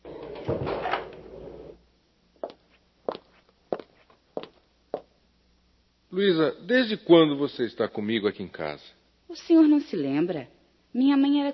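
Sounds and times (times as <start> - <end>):
door shutting with a rattling, scraping thump: 0.0 - 1.8
speech: 6.2 - 11.5.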